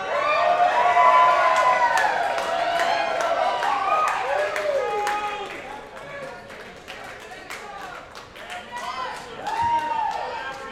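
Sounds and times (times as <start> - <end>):
large live country music concert crowd whooping and shouting in Georgia: 0.0 - 5.6, 8.7 - 10.5
live country music concert crowd clapping in Georgia: 1.1 - 10.6.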